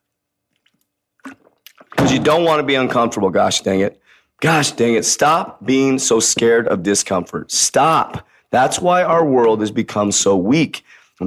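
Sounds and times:
sip and swallow of water: 0.0 - 2.0
faint mouth clicks: 0.5 - 2.0
slurping gulp of water: 0.6 - 1.9
speech: 2.1 - 11.2.

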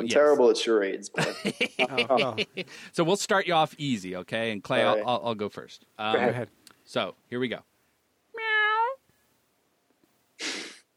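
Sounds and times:
speech: 0.0 - 7.7
laughter: 1.2 - 2.9
brief breathy hiss or puff of air: 2.4 - 3.0, 10.4 - 10.9
person imitating a cat meowing as a charades clue: 8.4 - 9.0.

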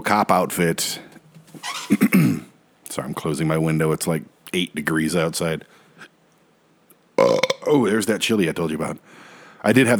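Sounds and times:
speech: 0.1 - 1.1, 1.9 - 5.8, 7.7 - 9.9
loud throaty burp: 1.6 - 2.5, 7.2 - 7.7.

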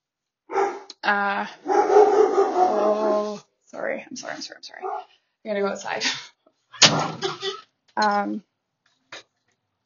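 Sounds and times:
dog barking: 0.5 - 0.9, 1.6 - 3.3, 4.8 - 5.1
speech: 1.1 - 6.3, 6.9 - 8.5.

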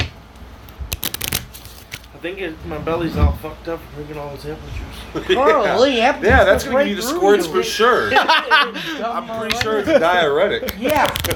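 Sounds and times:
small deck of playing cards riffling: 0.0 - 2.2, 10.6 - 11.3
speech: 2.2 - 11.3
laughter: 7.4 - 11.3.

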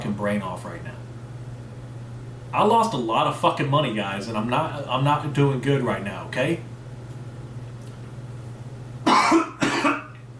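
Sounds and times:
faint steady hum: 0.0 - 10.3
speech: 0.1 - 1.1, 2.5 - 6.7
person coughing: 9.0 - 10.2.

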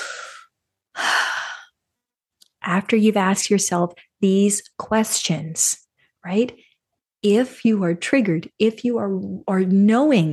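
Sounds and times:
person breathing in deeply: 0.0 - 1.8
speech: 2.6 - 10.3.

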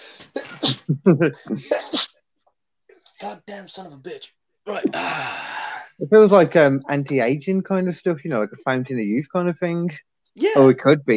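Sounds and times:
person sneezing loudly: 0.0 - 0.9, 1.6 - 2.1
strained vocal noises and breath bursts: 0.0 - 2.1, 3.1 - 6.0
speech: 0.6 - 2.0, 3.2 - 11.1.

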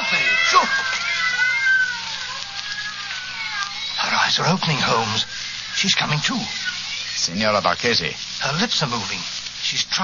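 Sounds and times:
cats meowing and yowling: 0.0 - 7.2
speech: 4.4 - 10.0.

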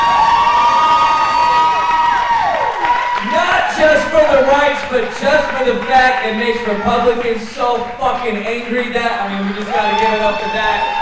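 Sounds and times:
high sustained whoops and yells: 0.0 - 4.4, 9.6 - 11.0
crowd cheering: 0.0 - 11.0
speech: 4.6 - 11.0.

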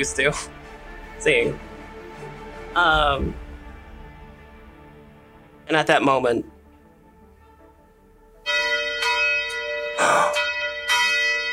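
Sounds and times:
speech: 0.0 - 0.6, 1.2 - 3.4, 5.7 - 6.5
bell ringing: 8.4 - 11.5.

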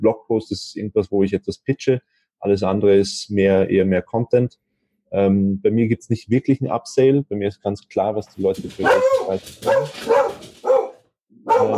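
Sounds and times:
speech: 0.0 - 10.3, 11.5 - 11.7
dog barking excitedly: 8.7 - 11.7.

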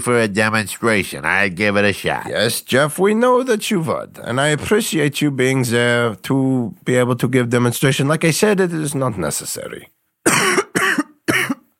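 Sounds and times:
speech: 0.0 - 10.6
harsh coughing fit: 10.2 - 11.7.

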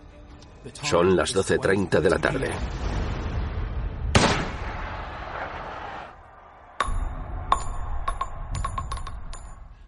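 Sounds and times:
speech: 0.6 - 3.0
scoped rifle shot fired through an open window: 4.1 - 4.9
bright metallic pings and clicks: 6.8 - 9.7.

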